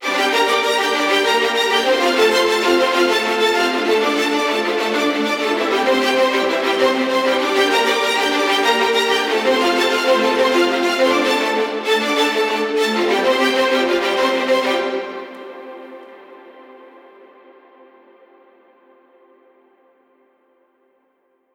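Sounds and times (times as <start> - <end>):
viola arpeggio in D minor at 130 BPM: 0.0 - 16.0.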